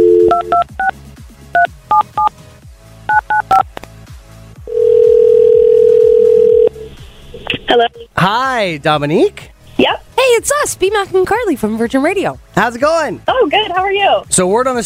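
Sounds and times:
telephone ringing tone: 0.0 - 0.7, 4.7 - 6.8
touch-tone telephone keypad beeps: 0.0 - 0.9, 3.1 - 3.6
speech: 7.8 - 9.5, 10.2 - 14.8.

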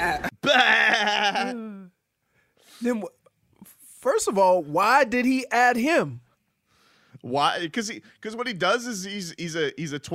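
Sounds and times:
human voice imitating a baby goat's bleat: 0.0 - 1.8
speech: 2.8 - 3.2, 4.0 - 6.2, 7.2 - 10.1.

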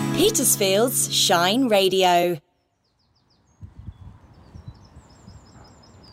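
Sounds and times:
speech: 0.2 - 2.4
faint high birdsong at Bosham: 2.5 - 6.1.

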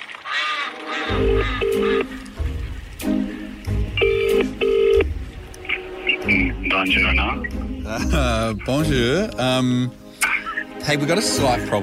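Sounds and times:
speech: 1.1 - 2.2, 6.8 - 10.0, 10.8 - 11.8
low rumbling background: 2.1 - 10.2
short bright phone keypad tones: 4.0 - 5.1.

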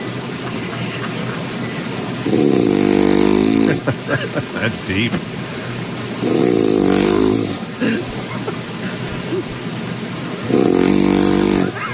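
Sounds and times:
laughter: 0.0 - 2.5, 3.3 - 6.2, 6.8 - 11.9
steady hiss: 0.0 - 11.9
pet snoring: 2.1 - 3.8, 6.2 - 8.2, 10.4 - 11.8
speech: 2.2 - 2.8, 3.9 - 5.4.

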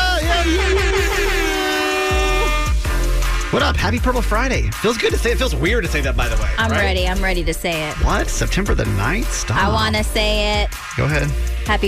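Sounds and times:
air horn blast: 0.0 - 3.4
speech: 3.5 - 11.8.

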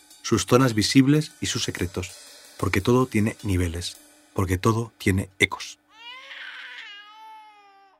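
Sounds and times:
speech: 0.3 - 5.8
baby crying: 5.9 - 7.9.

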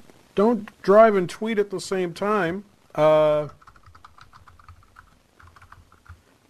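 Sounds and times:
speech: 0.4 - 3.6
typing on a computer keyboard: 3.4 - 6.2.

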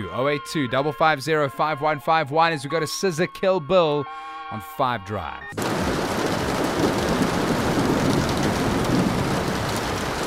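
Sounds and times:
speech: 0.0 - 6.1
distant thunder rumbling: 5.6 - 10.2
steady dense rain pattering and trickling: 5.6 - 10.2.

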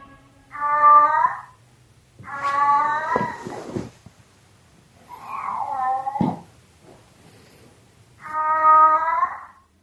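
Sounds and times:
domestic cat meowing: 0.5 - 1.6, 2.2 - 3.6, 5.1 - 6.5, 8.2 - 9.7.

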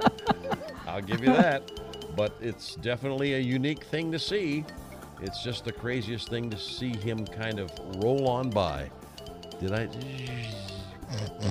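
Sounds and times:
laughter: 0.0 - 1.6
speech: 1.0 - 9.0, 9.6 - 11.5
pig oinking and grunting: 11.0 - 11.5.

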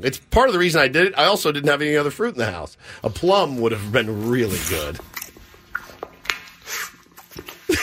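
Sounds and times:
speech: 0.0 - 5.2
person chewing a banana: 3.8 - 7.8
sticky mouth smacks: 4.8 - 7.8.

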